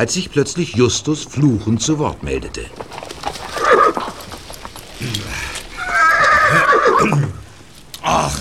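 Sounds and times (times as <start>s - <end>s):
speech: 0.0s - 3.0s
horse hooves clip-clopping: 0.0s - 8.1s
horse snorting: 2.9s - 7.5s
ridden horse whinnying: 3.4s - 7.5s.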